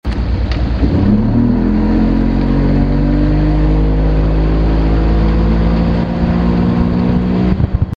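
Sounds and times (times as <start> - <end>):
motorboat accelerating: 0.2 - 7.9.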